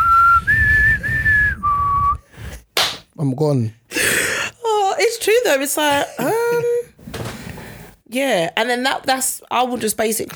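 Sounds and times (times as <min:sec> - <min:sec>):
person whistling a short four-note signal tune: 0:00.0 - 0:02.3
speech: 0:03.3 - 0:04.2, 0:05.2 - 0:06.8, 0:08.1 - 0:10.3.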